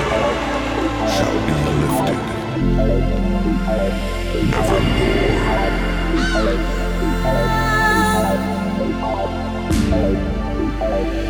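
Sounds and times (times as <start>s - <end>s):
dense droning musical backing: 0.0s - 11.2s
speech: 3.7s - 5.2s
raven cawing harshly: 6.2s - 8.8s.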